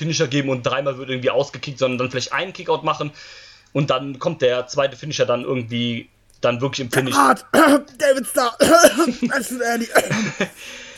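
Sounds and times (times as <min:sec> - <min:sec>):
speech: 0:00.0 - 0:10.9
person coughing: 0:07.0 - 0:10.6
laughter: 0:09.0 - 0:10.6.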